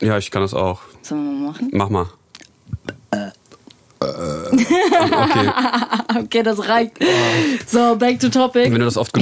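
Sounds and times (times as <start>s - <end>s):
speech: 0.0s - 2.2s, 4.5s - 9.2s
person burping into microphone: 2.7s - 4.8s
laughter: 4.6s - 6.3s.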